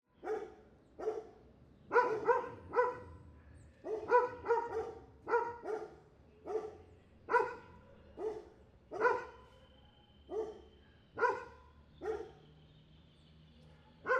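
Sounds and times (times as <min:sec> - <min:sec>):
street ambience: 0:00.0 - 0:14.1
street dog barking: 0:00.2 - 0:03.2, 0:03.8 - 0:09.5, 0:10.3 - 0:12.4, 0:13.8 - 0:14.1.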